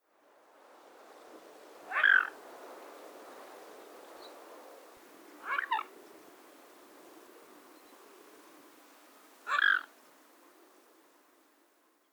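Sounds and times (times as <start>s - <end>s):
mute swan: 1.4s - 6.0s, 9.4s - 10.0s.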